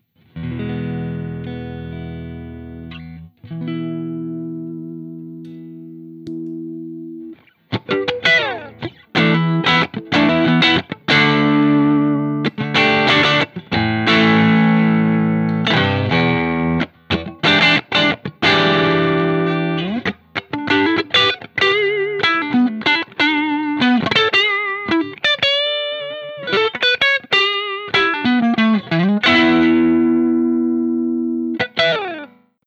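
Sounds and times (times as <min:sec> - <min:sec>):
Stratocaster electric guitar through Honk Machine and Marshall 2203 with soft overdrive: 0:00.0 - 0:32.5.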